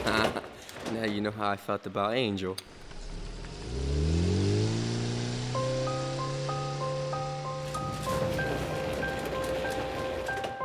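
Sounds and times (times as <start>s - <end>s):
speech: 1.1s - 2.8s
small car accelerating and driving away: 2.8s - 10.6s.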